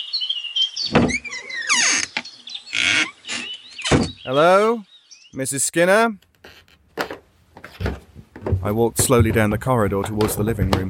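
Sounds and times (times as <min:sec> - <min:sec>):
back door creaking open with high drawn-out squeals: 0:00.9 - 0:04.3, 0:06.2 - 0:09.5
speech: 0:04.2 - 0:06.3, 0:08.6 - 0:10.8
wooden knocks of a back door: 0:06.2 - 0:10.8.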